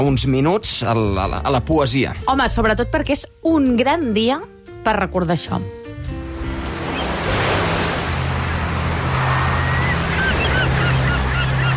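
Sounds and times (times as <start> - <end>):
speech: 0.0 - 5.8
roar of ocean waves and surf: 6.2 - 11.7
seagulls crying: 6.8 - 11.7.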